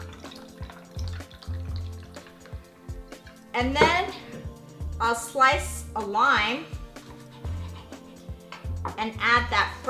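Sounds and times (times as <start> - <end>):
sparkling water pouring into a glass of ginger tea: 0.0 - 2.6
speech: 3.6 - 4.2, 5.0 - 6.7, 9.0 - 9.8.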